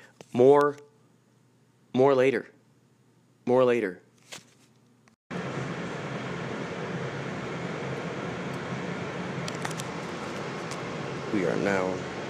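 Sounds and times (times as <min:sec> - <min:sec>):
speech: 0:00.3 - 0:00.9, 0:02.0 - 0:02.6, 0:03.5 - 0:04.0, 0:11.3 - 0:12.1
subway train riding into Chinatown: 0:05.4 - 0:12.2.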